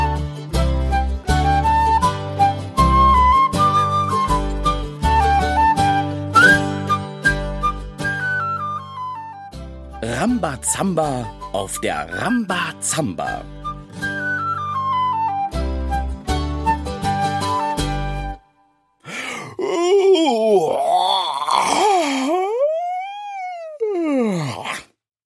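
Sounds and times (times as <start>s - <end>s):
playful music with thumping hits: 0.0s - 18.8s
speech: 10.2s - 14.1s
pirate captain yawning with a loud drawn-out groan: 19.1s - 24.9s.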